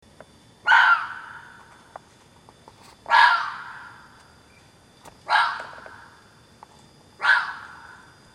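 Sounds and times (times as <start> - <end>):
fox barking: 0.6 - 1.6, 3.1 - 4.0, 5.2 - 5.9, 7.2 - 8.0.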